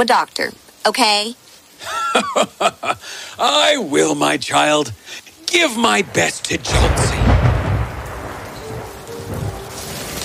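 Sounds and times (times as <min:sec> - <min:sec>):
speech: 0:00.0 - 0:07.2
hailstorm striking a town at night: 0:00.0 - 0:10.2
laughter: 0:01.8 - 0:03.1
low thunder rumbling: 0:05.5 - 0:10.2.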